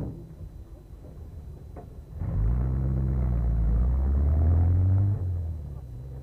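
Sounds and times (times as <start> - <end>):
low rumble: 0.0 - 6.2
car engine revving as the car pulls away: 2.2 - 6.2.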